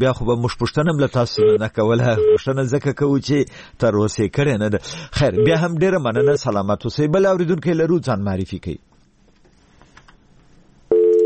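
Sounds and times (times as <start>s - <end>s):
speech: 0.0s - 8.9s
faint low noise: 0.0s - 11.2s
telephone busy signal after a call drops: 1.4s - 1.6s, 5.4s - 5.6s, 10.9s - 11.2s.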